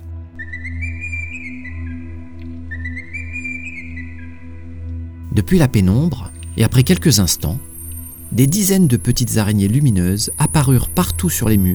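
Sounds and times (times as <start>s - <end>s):
whistles to call baby spiders: 0.4s - 4.4s, 5.3s - 11.7s
steady low droning hum in a cave: 5.3s - 11.7s
speech: 5.4s - 7.7s, 8.3s - 11.7s.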